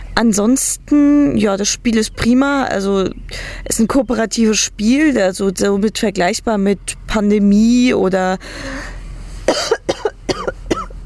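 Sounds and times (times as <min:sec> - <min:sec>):
speech: 0:00.2 - 0:09.8
person coughing after choking while swallowing: 0:09.5 - 0:11.0.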